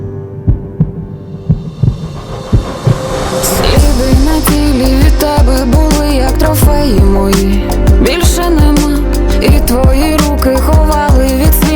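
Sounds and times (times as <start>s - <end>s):
heartbeat thumping in deep lub-dub pairs: 0.5s - 3.1s, 3.8s - 6.0s, 6.6s - 8.9s, 9.5s - 10.2s, 10.8s - 11.7s
low droning hum: 1.4s - 8.8s
speech: 5.5s - 11.4s.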